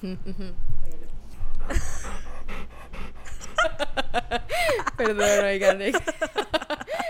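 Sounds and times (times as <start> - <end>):
speech: 0.0 - 0.7, 1.6 - 2.9, 3.7 - 7.0
dog panting in a bedroom: 1.5 - 4.0
laughter: 3.3 - 7.0.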